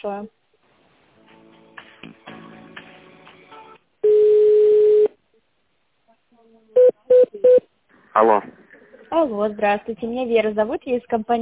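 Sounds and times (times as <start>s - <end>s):
speech: 0.0s - 0.4s, 6.4s - 11.4s
telephone ringing tone while a call is transferred: 4.0s - 5.1s.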